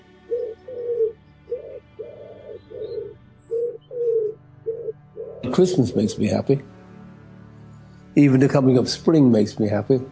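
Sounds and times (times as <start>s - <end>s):
pigeons cooing: 0.3s - 6.3s
speech: 5.5s - 6.7s, 8.2s - 10.1s.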